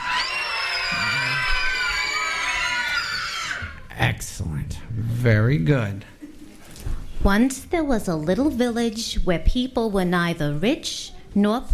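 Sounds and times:
crowd screaming together on cue: 0.0s - 3.9s
speech: 4.2s - 6.1s, 7.2s - 11.7s.

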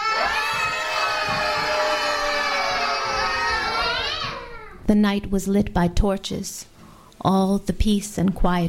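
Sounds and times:
dense crowd shouting and screaming: 0.0s - 4.8s
speech: 4.9s - 8.6s.

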